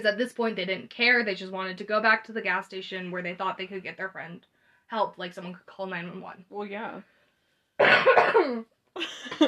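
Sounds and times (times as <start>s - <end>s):
speech: 0.0s - 7.1s, 7.8s - 9.4s
harsh loud cough: 7.8s - 8.6s, 9.2s - 9.4s.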